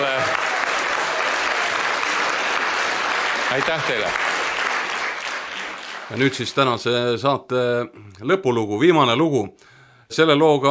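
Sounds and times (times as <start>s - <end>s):
audience applauding: 0.0s - 6.9s
speech: 3.5s - 4.3s, 6.1s - 10.6s.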